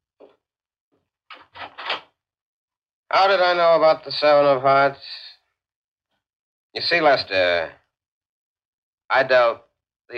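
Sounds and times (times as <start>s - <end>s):
door opening with rattling and scraping: 1.3s - 2.1s
speech: 3.1s - 5.2s, 6.8s - 7.8s, 9.1s - 10.1s.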